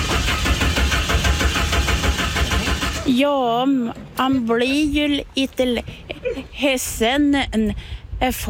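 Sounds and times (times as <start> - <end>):
car engine cranking without starting because parts have been taken: 0.0 - 3.2
speech: 3.1 - 8.4.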